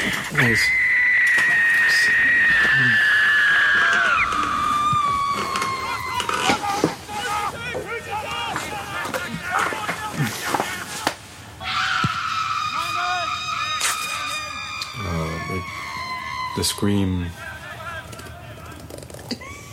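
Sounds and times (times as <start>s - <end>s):
speech: 0.3s - 0.9s, 16.6s - 17.4s
long high-pitched human scream: 0.4s - 7.6s, 11.6s - 17.4s
shorter lower human vocal cries: 0.5s - 10.9s, 11.6s - 18.7s.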